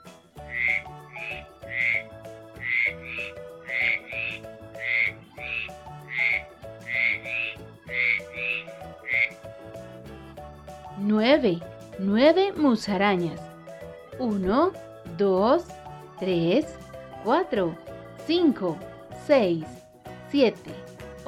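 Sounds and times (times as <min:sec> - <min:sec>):
soft musical backing: 0:00.0 - 0:21.2
frogs and toads croaking: 0:00.4 - 0:09.4
speech: 0:11.2 - 0:13.5, 0:14.2 - 0:20.8.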